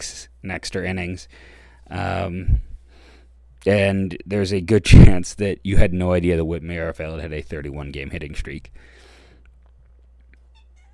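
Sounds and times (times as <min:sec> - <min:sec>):
speech: 0:00.0 - 0:02.7, 0:03.6 - 0:09.0
cat meowing: 0:10.5 - 0:10.9.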